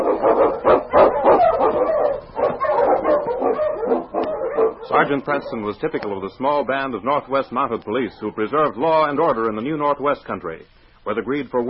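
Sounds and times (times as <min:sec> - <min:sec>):
husky sled dog barking and yipping: 0:00.0 - 0:05.7
speech: 0:00.2 - 0:00.8, 0:05.0 - 0:11.6.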